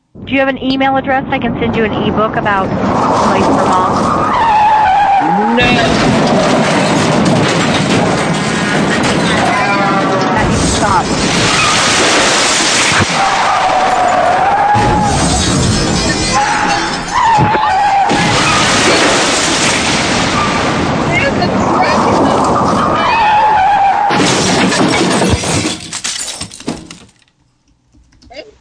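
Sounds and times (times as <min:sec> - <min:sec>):
speech: 0:00.3 - 0:04.4, 0:05.3 - 0:06.5
grinding and shattering debris: 0:02.4 - 0:27.4
screeching skidding tone: 0:02.5 - 0:19.4, 0:20.0 - 0:24.2
truck crashing into a house: 0:02.6 - 0:27.2.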